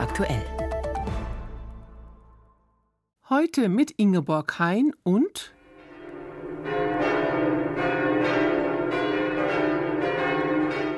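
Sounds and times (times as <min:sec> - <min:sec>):
speech: 0:00.1 - 0:00.6, 0:03.3 - 0:05.6
large cathedral south tower church bells ringing: 0:05.6 - 0:10.9.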